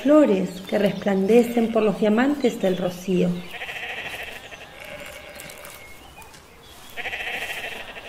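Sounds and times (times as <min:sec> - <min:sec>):
speech: 0:00.0 - 0:03.6
outdoor background: 0:00.0 - 0:08.0
flock of lambs bleating: 0:01.3 - 0:02.4, 0:03.4 - 0:05.9, 0:06.9 - 0:08.0.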